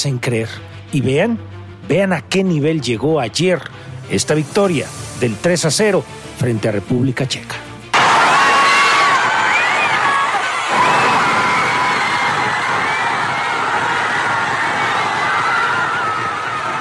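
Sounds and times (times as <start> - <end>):
speech: 0.0 - 7.7
huge outdoor crowd cheering: 7.9 - 16.8
high-pitched screams in an outdoor crowd: 8.0 - 16.8.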